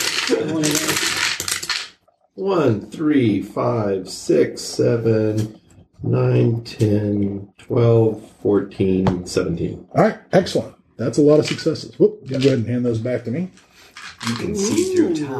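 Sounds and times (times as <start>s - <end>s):
handful of dice rattling through a dice-rolling device during a tabletop game: 0.0s - 2.0s, 14.0s - 14.5s
speech: 0.3s - 1.1s, 2.4s - 15.3s.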